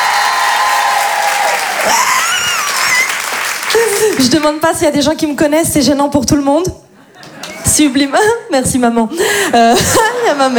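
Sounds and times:
audience at a live stage show clapping: 0:00.0 - 0:04.6
speech: 0:01.8 - 0:02.1, 0:03.8 - 0:06.8, 0:07.7 - 0:10.5.

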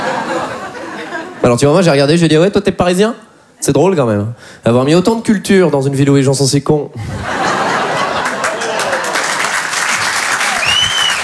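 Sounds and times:
laughter: 0:00.0 - 0:01.4, 0:07.0 - 0:10.8
speech: 0:01.4 - 0:07.6
audience applause from people from the provinces: 0:07.4 - 0:11.2
audience whistles: 0:10.4 - 0:11.2.

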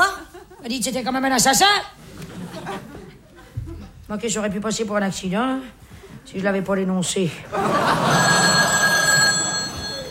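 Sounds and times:
speech: 0:00.6 - 0:02.0, 0:04.1 - 0:08.5
laughter: 0:02.2 - 0:04.0, 0:07.5 - 0:10.0
telephone bell ringing with a bright metallic trill: 0:07.8 - 0:10.0.

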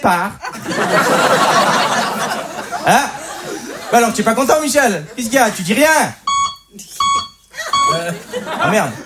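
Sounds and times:
speech: 0:00.0 - 0:01.5, 0:02.3 - 0:03.2, 0:03.9 - 0:07.1, 0:07.9 - 0:09.0
laughter: 0:00.4 - 0:06.0, 0:07.5 - 0:09.0
mid-pitched electronic beep signal: 0:06.3 - 0:08.0.

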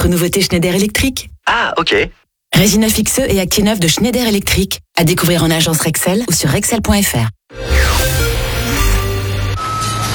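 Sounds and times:
speech: 0:00.0 - 0:08.8
large truck engine drone: 0:07.5 - 0:10.1.

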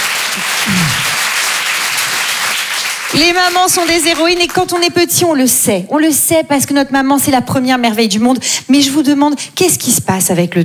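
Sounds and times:
audience at a live show applauding: 0:00.0 - 0:04.8
speech: 0:03.2 - 0:10.6.

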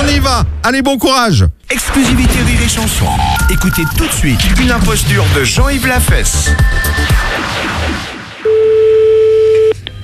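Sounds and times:
speech: 0:00.2 - 0:08.0
telephone line tone while a call is being placed: 0:08.5 - 0:09.8.

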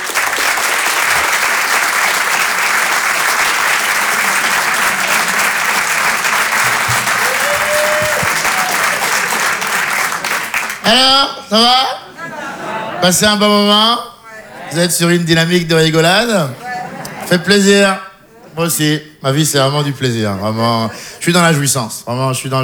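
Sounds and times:
audience applauding a performer in an ovation: 0:00.0 - 0:11.3
laughter: 0:01.0 - 0:19.0, 0:19.6 - 0:21.7
speech: 0:10.9 - 0:12.0, 0:13.0 - 0:14.1, 0:14.7 - 0:16.6, 0:17.3 - 0:18.0, 0:18.6 - 0:22.6.

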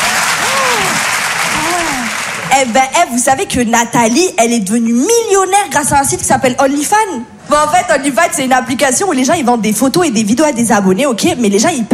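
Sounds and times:
audience applause: 0:00.0 - 0:02.5
speech: 0:02.6 - 0:11.9.

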